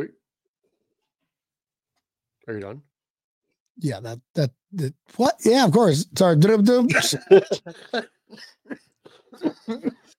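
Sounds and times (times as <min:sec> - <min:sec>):
speech: 0:00.0 - 0:00.2, 0:02.4 - 0:02.9, 0:03.8 - 0:10.1
short coughing bursts: 0:06.8 - 0:10.1
laughter: 0:06.9 - 0:10.1.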